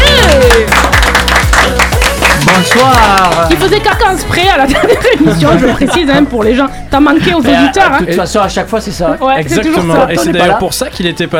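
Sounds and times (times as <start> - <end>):
crowd applauding a guest on a radio programme: 0.0 - 4.1
thumping radio music jingle with steady kick-drum beats: 0.0 - 11.3
speech: 2.8 - 11.3
laughter: 4.6 - 6.7.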